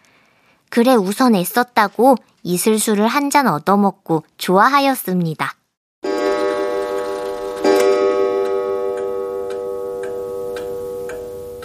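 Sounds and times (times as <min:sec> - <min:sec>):
speech: 0:00.8 - 0:05.6
clock striking the hour with ringing chimes in a village house: 0:06.0 - 0:11.6.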